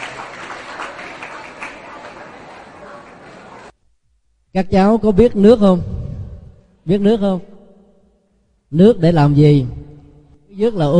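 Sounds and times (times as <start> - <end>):
group of children clapping: 0.0 - 3.7
speech: 4.5 - 6.0, 6.9 - 7.5, 8.7 - 9.9, 10.6 - 10.9.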